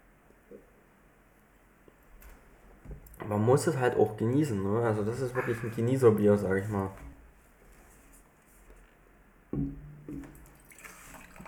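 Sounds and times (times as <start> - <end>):
speech: 3.2 - 7.1
water poured into a glass during a beer tasting: 10.3 - 11.4.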